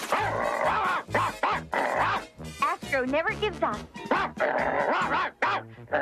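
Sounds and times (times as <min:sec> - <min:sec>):
dog growling: 0:00.1 - 0:02.2, 0:04.1 - 0:06.0
speech: 0:03.0 - 0:06.0.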